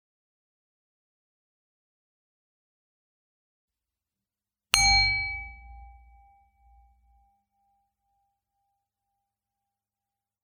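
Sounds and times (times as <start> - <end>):
meditation bell ringing: 4.8 - 7.2.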